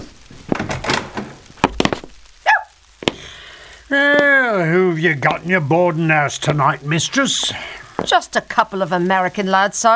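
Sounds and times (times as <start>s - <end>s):
wooden boarding-house door thudding, creaking open and closing: 0.4s - 2.2s
speech: 3.9s - 9.9s.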